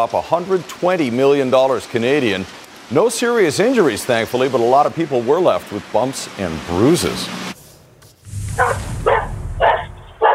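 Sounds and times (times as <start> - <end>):
speech: 0.0 - 7.5, 8.6 - 8.9
steady low rumble of noise: 8.3 - 10.2
dog barking while chased by coyote: 8.6 - 10.3.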